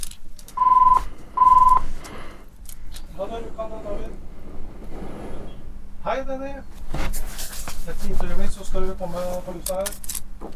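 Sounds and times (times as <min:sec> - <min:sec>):
telephone ringing as a call comes in: 0:00.6 - 0:01.9
speech: 0:06.1 - 0:07.3, 0:07.9 - 0:10.5.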